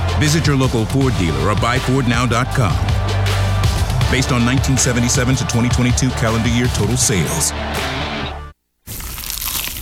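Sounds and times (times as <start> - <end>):
speech: 0.2 - 2.9, 4.1 - 8.0
biting into a crisp cheesy slice of pizza: 8.9 - 9.8.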